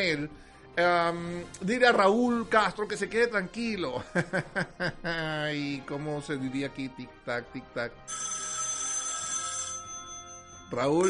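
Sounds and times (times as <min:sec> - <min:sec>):
speech: 0:00.0 - 0:08.3, 0:10.7 - 0:11.0
laughter: 0:04.0 - 0:05.6
telephone ringing with electronic trill: 0:08.0 - 0:11.0.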